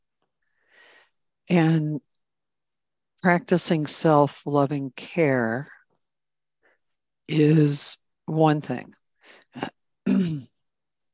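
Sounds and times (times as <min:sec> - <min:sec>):
speech: 0:01.5 - 0:02.1, 0:03.2 - 0:05.8, 0:07.3 - 0:10.5
throat clearing: 0:10.1 - 0:10.5.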